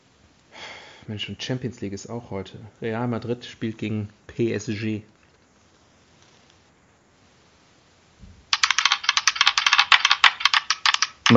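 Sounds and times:
speech: 1.1 - 5.1
digital dice-roll effect from a phone app: 8.5 - 11.3.

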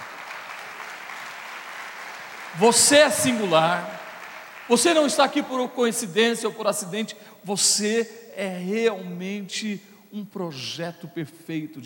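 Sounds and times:
large audience applauding loudly: 0.0 - 5.8
speech: 2.5 - 4.0, 4.7 - 11.8.

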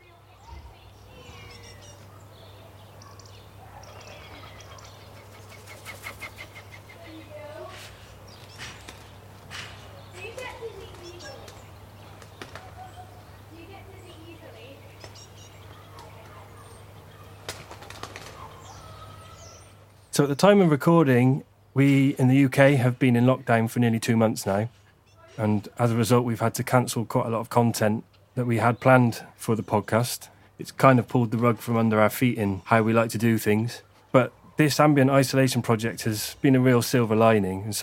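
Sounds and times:
faint voices of children playing on a trampoline: 0.0 - 5.3, 6.8 - 8.1, 9.9 - 19.9
common garden birds chirping in a back garden in the UK: 0.0 - 37.8
low constant hum: 0.0 - 37.8
sharp knocks: 9.5 - 9.8
speech: 20.2 - 24.8, 25.4 - 37.8.

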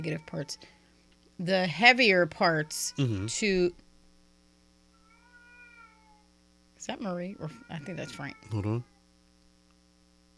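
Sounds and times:
cat wailing: 0.0 - 0.8, 5.0 - 6.3, 7.4 - 9.0
speech: 0.0 - 0.8, 1.4 - 3.8, 6.8 - 8.9
low electrical hum: 0.0 - 10.3.

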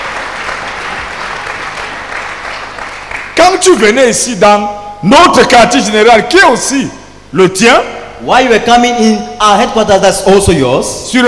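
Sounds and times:
crowd applauding: 0.0 - 3.4
speech: 3.4 - 11.2.

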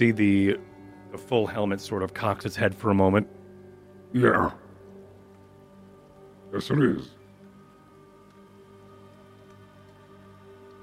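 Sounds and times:
speech: 0.0 - 3.4, 4.1 - 4.6, 6.5 - 7.2
soft rain pattering on a hard surface: 4.8 - 10.8.

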